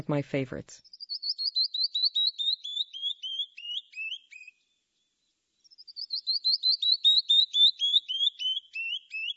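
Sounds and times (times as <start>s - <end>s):
speech: 0.0s - 1.0s
canyon wren singing its cascading song: 0.8s - 4.6s, 5.6s - 9.3s.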